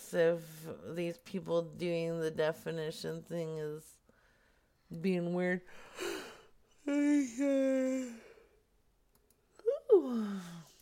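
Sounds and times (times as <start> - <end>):
speech: 0.1 - 4.0, 4.9 - 6.1, 6.9 - 8.3, 10.0 - 10.7
person yawning: 6.0 - 8.4, 9.6 - 10.8.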